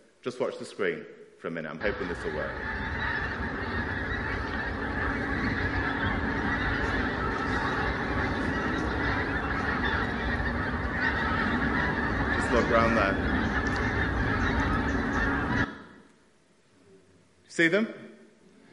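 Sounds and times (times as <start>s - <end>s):
speech: 0.2s - 2.8s, 12.6s - 13.3s, 17.6s - 18.0s
large flock of geese honking: 1.8s - 16.1s.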